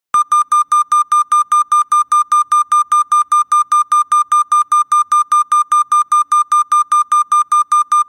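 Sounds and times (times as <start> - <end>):
higher-pitched beep: 0.2 - 8.0.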